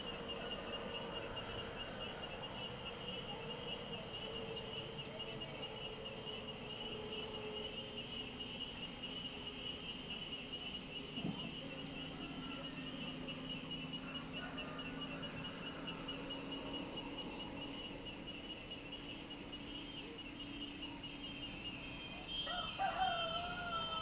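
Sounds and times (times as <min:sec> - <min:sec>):
cicadas buzzing in chorus: 0:00.0 - 0:24.0.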